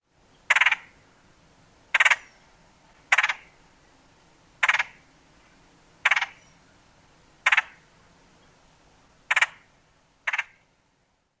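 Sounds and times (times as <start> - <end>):
rattle calls: 0.4 - 1.0, 1.9 - 2.5, 3.1 - 3.6, 4.6 - 5.1, 6.0 - 6.7, 7.4 - 7.9, 9.2 - 10.7.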